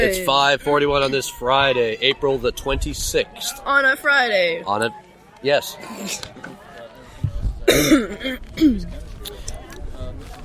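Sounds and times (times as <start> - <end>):
speech: 0.0 - 6.7, 7.7 - 9.0
phlegmy coughing: 7.6 - 8.9.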